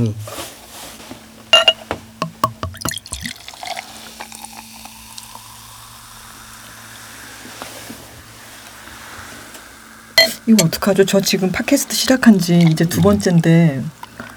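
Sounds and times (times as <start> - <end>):
speech: 0.0 - 0.4, 10.5 - 14.0
beer pouring into a glass: 2.7 - 8.1, 10.3 - 13.5.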